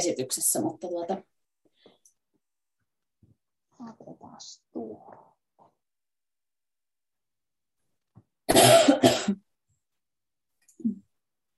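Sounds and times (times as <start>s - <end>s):
speech: 0.0s - 1.4s, 3.8s - 5.3s, 8.5s - 9.4s
loud harsh coughs: 8.5s - 9.5s.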